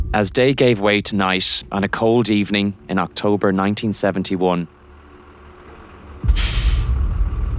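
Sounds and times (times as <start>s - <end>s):
speech: 0.1s - 4.7s
bus engine idling on a cold October evening: 0.4s - 7.5s
bus air brake hiss: 6.3s - 7.0s.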